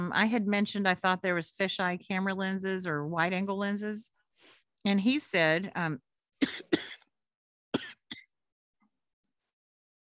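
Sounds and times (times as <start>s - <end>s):
speech: 0.1s - 6.8s
person coughing: 6.4s - 7.1s, 7.8s - 8.3s.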